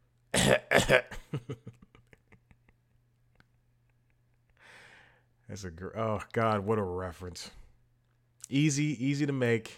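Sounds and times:
person clearing throat with harsh raspy bursts: 0.3s - 1.3s
speech: 0.5s - 1.6s, 5.5s - 7.6s, 8.5s - 9.7s.

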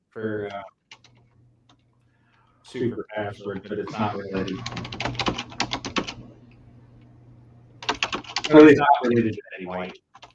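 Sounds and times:
low steady hum: 0.0s - 10.3s
speech: 0.2s - 0.8s, 2.7s - 5.2s, 8.5s - 10.0s
rapid hard keyboard typing: 0.5s - 1.8s, 4.3s - 6.2s, 7.8s - 8.7s, 9.8s - 10.3s.

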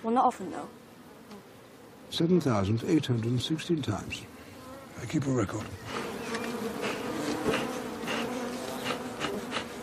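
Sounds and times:
bee buzzing: 0.0s - 9.8s
speech: 0.1s - 1.4s, 2.1s - 4.4s, 5.0s - 6.0s.

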